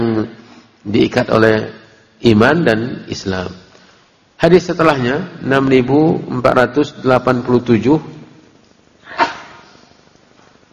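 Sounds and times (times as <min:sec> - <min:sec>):
speech: 0:00.2 - 0:03.6, 0:04.4 - 0:08.2
sneeze: 0:09.0 - 0:09.8.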